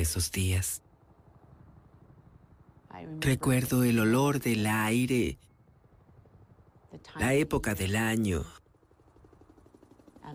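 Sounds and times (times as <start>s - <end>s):
speech: 0.0s - 0.8s, 3.0s - 5.5s, 6.9s - 8.6s
helicopter rotor thumping: 8.7s - 10.3s.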